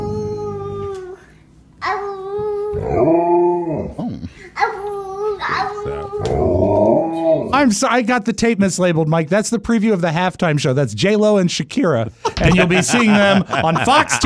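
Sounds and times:
boy about two years old babbling: 0.0s - 3.0s, 4.6s - 6.5s
Alaskan Malamute howling: 1.8s - 4.0s, 4.6s - 7.6s
speech: 7.5s - 14.2s
laughter: 12.2s - 14.2s.

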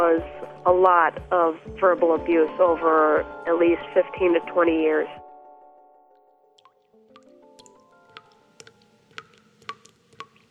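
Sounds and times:
speech: 0.1s - 5.2s
water dripping from a leaky faucet: 6.6s - 10.4s.

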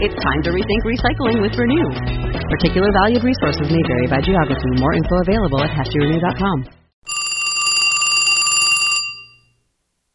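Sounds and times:
speech: 0.0s - 6.8s
telephone ringing: 7.1s - 9.6s.

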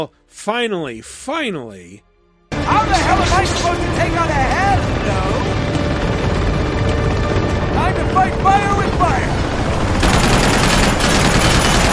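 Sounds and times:
speech: 0.0s - 2.1s, 2.7s - 5.7s, 7.8s - 9.4s
rapid anti-aircraft tank turret gunfire in a video game: 2.8s - 11.9s.

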